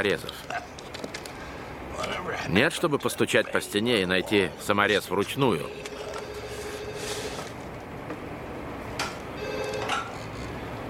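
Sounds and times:
speech: 0:00.0 - 0:00.8, 0:02.0 - 0:06.1
steady hiss: 0:00.0 - 0:10.8
telephone ringing: 0:05.7 - 0:07.5, 0:09.4 - 0:10.2.

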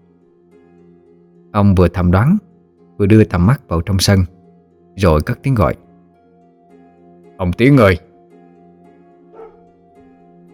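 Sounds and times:
speech: 0:01.6 - 0:04.3, 0:05.0 - 0:05.8, 0:07.4 - 0:08.1
dog barking: 0:09.3 - 0:09.8.

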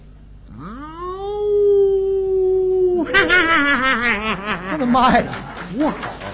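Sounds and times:
long mid-pitched howl, wolf or night owl call: 0:00.5 - 0:03.2
laughter: 0:02.9 - 0:06.3
speech: 0:03.2 - 0:06.2.

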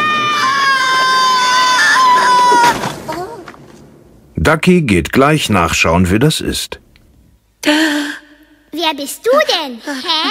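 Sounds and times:
small flying creature screaming as it is flung through the air: 0:00.0 - 0:02.7
speech: 0:04.5 - 0:06.8, 0:07.6 - 0:08.0, 0:08.8 - 0:10.2.

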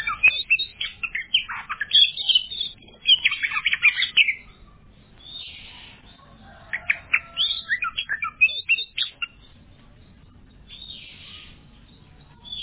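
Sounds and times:
Oriental magpie-robin song with varied whistles, chips and rising-falling notes: 0:00.0 - 0:12.6.

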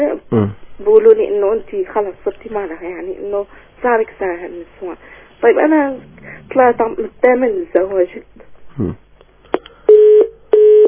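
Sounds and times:
speech: 0:00.0 - 0:09.0
telephone busy tone beeps after a call is cut off: 0:09.9 - 0:10.8.

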